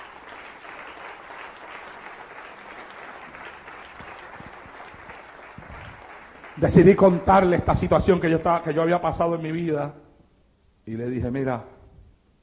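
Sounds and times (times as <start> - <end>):
church congregation clapping: 0.0 - 8.6
speech: 6.6 - 10.0, 10.9 - 11.8.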